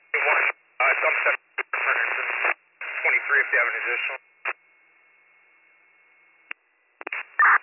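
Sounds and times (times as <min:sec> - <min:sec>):
bursts of crackly radio static: 0:00.0 - 0:07.6
band-limited fire dispatch radio transmission: 0:00.1 - 0:04.6, 0:07.0 - 0:07.6
speech: 0:03.3 - 0:04.2.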